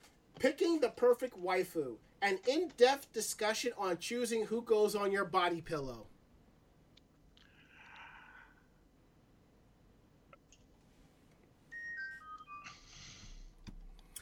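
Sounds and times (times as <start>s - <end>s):
low hum: 0.0s - 14.2s
speech: 0.4s - 6.1s
phone chiming with bright descending electronic tones: 11.7s - 13.2s.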